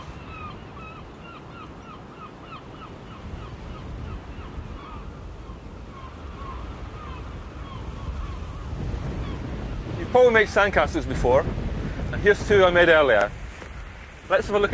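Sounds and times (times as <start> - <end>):
birds calling: 0.0 - 10.6
gusty wind buffeting the microphone: 0.0 - 14.7
steady rushing surf breaking on a beach: 0.0 - 14.7
speech: 10.2 - 11.6, 12.2 - 13.4, 14.3 - 14.7.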